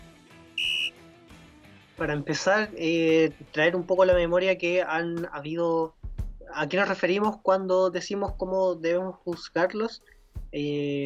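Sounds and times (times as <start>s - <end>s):
loud high-pitched electronic timer beep: 0.6s - 0.9s
speech: 2.0s - 11.0s.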